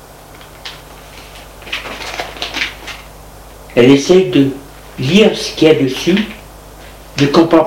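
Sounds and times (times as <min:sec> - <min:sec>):
papers rustling and crinkling: 0:00.4 - 0:03.1
speech: 0:03.7 - 0:06.4, 0:07.2 - 0:07.6.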